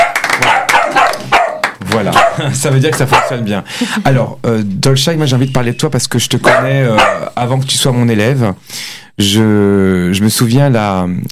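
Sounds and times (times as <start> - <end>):
dog barking excitedly in sharp loud yaps: 0.0 - 2.4, 3.1 - 3.5, 6.4 - 7.4
laughter: 1.8 - 3.1
speech: 2.0 - 11.2.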